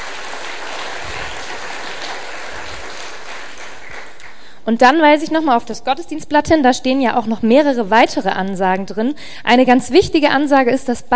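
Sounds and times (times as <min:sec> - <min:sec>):
church audience applauding during a service: 0:00.0 - 0:04.5
speech: 0:04.7 - 0:11.1.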